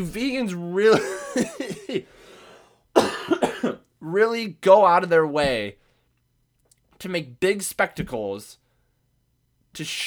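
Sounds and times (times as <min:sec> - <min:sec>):
speech: 0:00.0 - 0:02.3, 0:03.0 - 0:05.8, 0:07.0 - 0:08.6, 0:09.8 - 0:10.0
person coughing from a cold: 0:00.9 - 0:02.3, 0:03.0 - 0:03.9.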